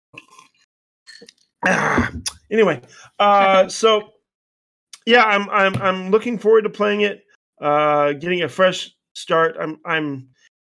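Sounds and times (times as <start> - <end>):
person burping: 1.2 - 2.4
speech: 1.2 - 4.2, 5.0 - 10.4.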